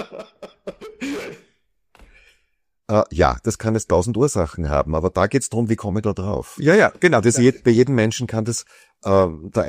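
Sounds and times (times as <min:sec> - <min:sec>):
person clearing throat: 0:00.7 - 0:01.5
speech: 0:02.9 - 0:09.6.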